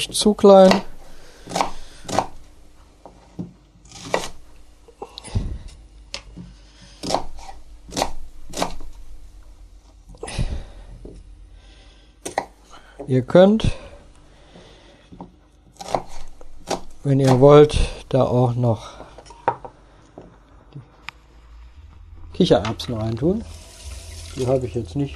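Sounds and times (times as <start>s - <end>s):
speech: 0.0s - 0.9s, 13.1s - 13.8s, 17.1s - 19.0s, 22.4s - 23.6s, 24.4s - 25.1s
chopping an onion into bite-sized pieces: 0.5s - 2.4s, 3.9s - 4.4s, 6.9s - 8.9s, 15.8s - 18.0s.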